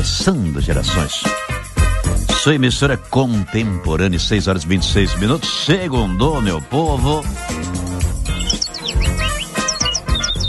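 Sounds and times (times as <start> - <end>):
speech: 0.0 - 1.7, 2.4 - 7.8
small bird singing: 7.9 - 10.4.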